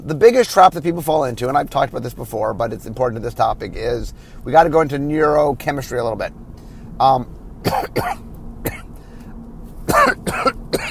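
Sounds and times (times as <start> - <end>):
speech: 0.0 - 6.4, 7.0 - 8.8
person coughing loudly: 7.6 - 8.9, 9.9 - 10.9.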